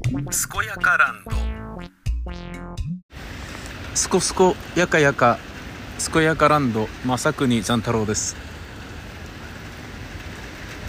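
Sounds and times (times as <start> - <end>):
speech: 0.1 - 3.4, 4.0 - 8.5
heavy rain: 3.1 - 10.8.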